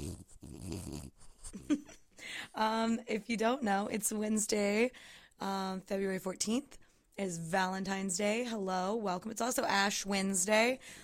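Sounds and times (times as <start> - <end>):
small dog snoring and snorting on a person's lap: 0.0 - 1.7
speech: 2.6 - 11.0.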